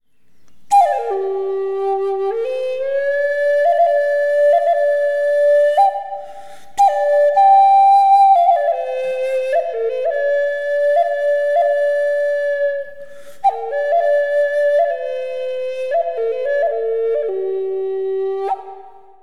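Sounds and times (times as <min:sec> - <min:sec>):
flute with reverb: 0:00.7 - 0:19.2.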